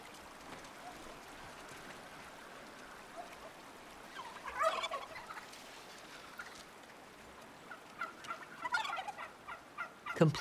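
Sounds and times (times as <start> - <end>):
wild turkeys gobbling: 2.3 - 6.7, 7.3 - 10.3
speech: 10.2 - 10.3.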